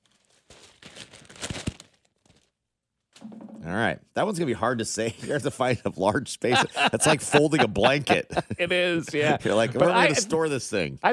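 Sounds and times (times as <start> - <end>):
large paper scroll being rolled up: 0.0 - 2.5
speech: 3.7 - 11.1
laughter: 4.9 - 10.7.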